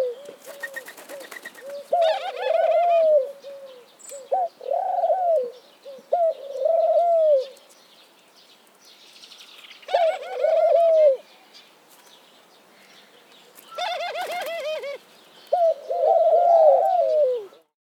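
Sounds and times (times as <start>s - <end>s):
dove cooing: 0.0s - 7.6s, 9.9s - 11.3s, 13.7s - 17.7s.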